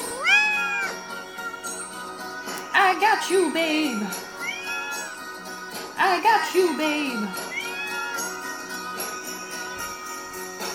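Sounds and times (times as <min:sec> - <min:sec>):
cat meowing: 0:00.0 - 0:01.7, 0:04.3 - 0:05.2, 0:07.4 - 0:08.4
speech: 0:03.0 - 0:04.3, 0:06.0 - 0:07.5.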